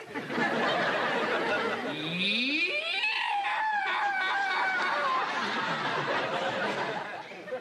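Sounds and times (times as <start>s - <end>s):
laughter: 0.0s - 7.6s
man's primal scream at a male bonding group session: 2.0s - 5.4s.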